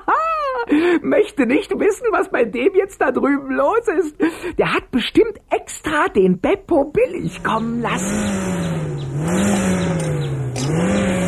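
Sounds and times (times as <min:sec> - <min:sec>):
speech: 0:00.7 - 0:10.0
car engine revving hard: 0:07.3 - 0:11.2.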